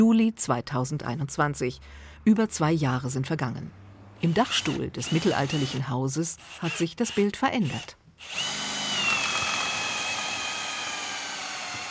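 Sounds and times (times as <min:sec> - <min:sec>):
speech: 0:00.0 - 0:08.7
power drill drilling into a wooden beam: 0:04.2 - 0:05.8, 0:06.4 - 0:11.8.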